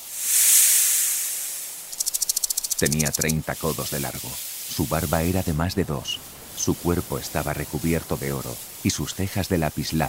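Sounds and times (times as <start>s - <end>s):
snake hissing as it approaches: 0.0s - 10.0s
sharp rattling pulses: 0.4s - 3.4s
speech: 2.8s - 10.0s.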